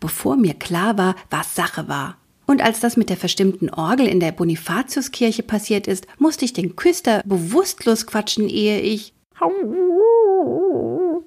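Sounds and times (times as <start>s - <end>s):
speech: 0.0s - 10.9s
dog whining pitiful howl: 9.4s - 11.2s.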